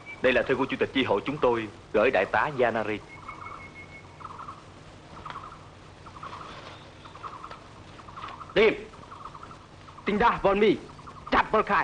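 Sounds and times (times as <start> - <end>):
low rumble: 0.0 - 11.8
speech: 0.2 - 3.2, 8.6 - 8.8, 10.1 - 10.9, 11.5 - 11.8
flock of fowl calling in short burbling bursts: 2.9 - 11.8.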